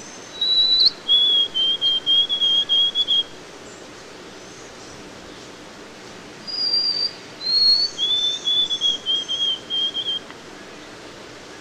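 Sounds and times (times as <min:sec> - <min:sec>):
white-throated sparrow whistled song: 0:00.0 - 0:03.3, 0:06.4 - 0:10.3.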